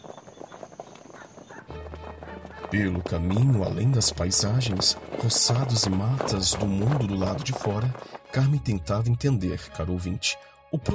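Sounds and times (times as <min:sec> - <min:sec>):
horse hooves clip-clopping pulling a horse-drawn cart: 0:00.0 - 0:08.5
horse-drawn cart wheels rumbling: 0:00.0 - 0:08.5
speech: 0:02.7 - 0:10.9.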